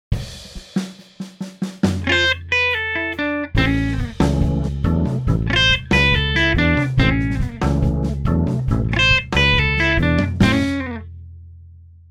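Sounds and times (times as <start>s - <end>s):
blues rumba guitar playing: 2.0s - 11.1s.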